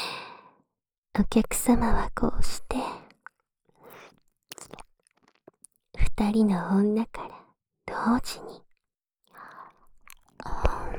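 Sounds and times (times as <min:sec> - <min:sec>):
speech: 0:01.2 - 0:03.0, 0:06.2 - 0:08.6
wet licking of an ear: 0:03.1 - 0:05.7.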